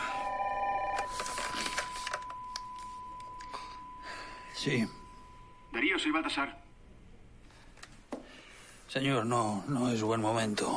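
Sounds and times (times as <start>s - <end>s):
telephone ringing with an incoming call: 0.0s - 6.4s
thin steady tone: 0.0s - 6.4s
speech: 4.6s - 5.0s, 5.7s - 6.6s, 9.0s - 10.7s.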